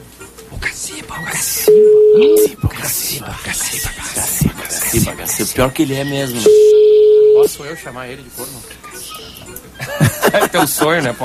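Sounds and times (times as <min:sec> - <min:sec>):
speech: 0:00.8 - 0:08.8, 0:09.9 - 0:11.2
ringback tone on an unanswered telephone call: 0:01.7 - 0:02.6, 0:06.4 - 0:07.5
laughter: 0:09.8 - 0:11.2.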